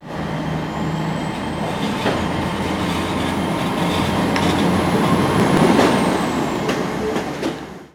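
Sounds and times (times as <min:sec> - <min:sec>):
Class 800 diesel train: 0:00.0 - 0:07.9.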